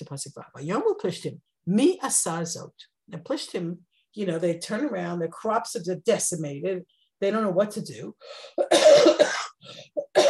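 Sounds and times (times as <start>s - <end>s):
speech: 0.1s - 10.2s
person coughing: 8.6s - 10.2s.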